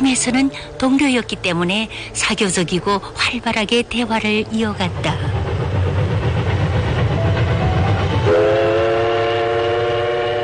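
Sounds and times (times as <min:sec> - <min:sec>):
train running slowly on rails through spring countryside: 0:00.0 - 0:10.4
speech: 0:00.1 - 0:05.5
loud sustained train horn blaring: 0:08.2 - 0:10.4.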